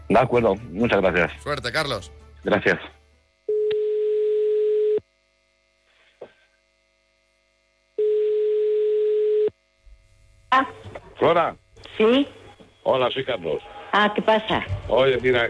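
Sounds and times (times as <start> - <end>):
speech: 0.1 - 3.0, 10.6 - 15.4
telephone tones while a call is being placed: 3.5 - 5.0, 8.0 - 9.5.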